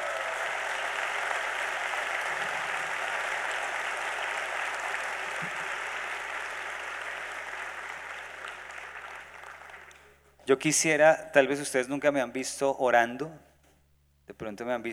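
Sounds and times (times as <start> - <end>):
sizable convention audience applauding: 0.0 - 10.2
speech: 10.5 - 13.4, 14.4 - 14.9.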